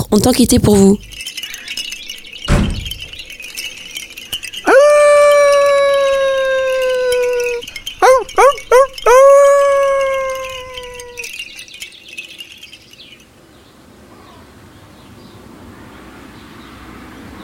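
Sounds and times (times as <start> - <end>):
speech: 0.1 - 1.1
sharp thud: 2.5 - 3.0
wolf howling: 4.6 - 11.3.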